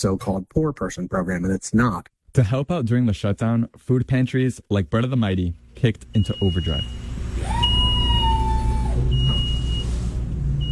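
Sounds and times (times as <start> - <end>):
speech: 0.0 - 7.6
large truck engine rumbling heavily: 5.7 - 10.7
steady high whining tone: 6.5 - 9.9.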